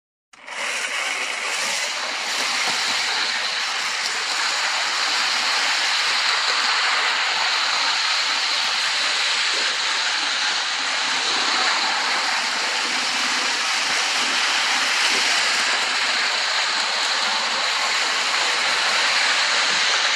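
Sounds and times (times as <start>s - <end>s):
toy train running on rails: 0.4s - 20.1s.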